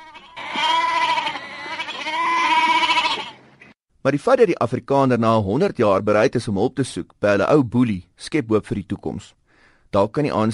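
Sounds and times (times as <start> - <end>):
goat bleating: 0.0 - 3.4
speech: 4.0 - 10.5.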